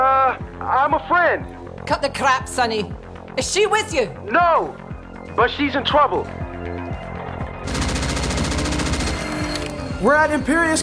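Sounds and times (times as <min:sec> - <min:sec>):
speech: 0:00.9 - 0:04.8, 0:05.4 - 0:06.4, 0:10.0 - 0:10.8
rapid automatic gunfire from a shootout at a corporate building: 0:07.7 - 0:09.8.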